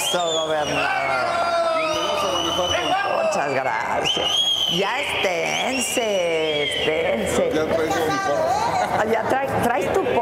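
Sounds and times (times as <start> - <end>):
speech: 0.1 - 1.3, 2.6 - 10.2
crowd of boys shouting and cheering at an event in Guanajuato: 0.7 - 3.7.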